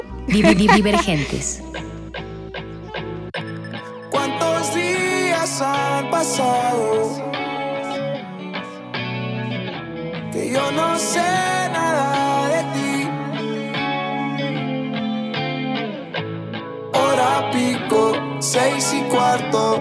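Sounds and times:
laughter: 0.0s - 1.7s
male singer singing a rock song: 0.0s - 1.7s, 3.9s - 8.8s, 10.2s - 15.0s, 17.0s - 19.8s
driving distorted rock guitars: 0.0s - 19.8s
speech: 0.3s - 1.8s, 5.6s - 7.4s, 10.4s - 12.6s, 18.4s - 19.8s.

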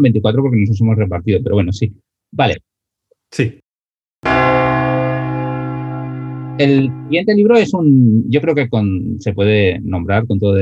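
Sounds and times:
speech: 0.0s - 2.7s, 3.3s - 3.6s, 6.6s - 10.6s
single loud church bell striking: 4.2s - 7.5s.

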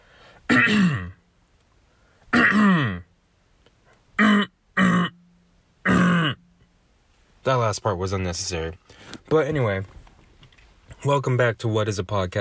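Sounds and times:
person clearing throat: 0.5s - 1.2s, 2.3s - 3.1s, 4.2s - 5.2s, 5.8s - 6.5s
speech: 0.7s - 1.1s, 7.4s - 10.0s, 11.0s - 12.4s.

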